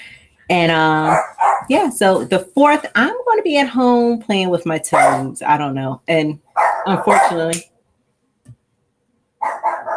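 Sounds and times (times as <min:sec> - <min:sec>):
speech: 0:00.5 - 0:07.7
dogs barking: 0:01.0 - 0:01.8, 0:04.9 - 0:05.3, 0:06.5 - 0:07.5, 0:09.4 - 0:09.9.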